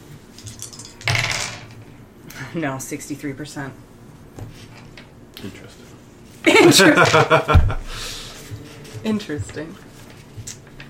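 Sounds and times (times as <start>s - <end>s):
pair of percentile dice rolling on a hard tabletop: 0.4s - 1.8s
speech: 2.5s - 3.9s, 5.4s - 5.8s, 6.7s - 8.2s, 9.0s - 9.9s
laughter: 6.5s - 7.9s.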